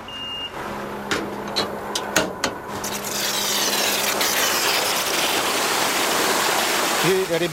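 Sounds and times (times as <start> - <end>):
tanker truck low engine hum: 0.0 - 7.0
metallic clanks and knocks: 1.0 - 2.6
water gushing from tanker truck into pond: 2.7 - 7.5
speech: 7.1 - 7.5.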